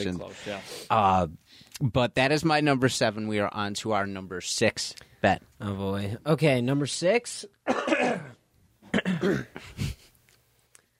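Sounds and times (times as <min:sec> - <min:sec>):
speech: 0:00.0 - 0:10.0
person clearing throat: 0:07.7 - 0:09.7
person coughing: 0:07.7 - 0:09.9.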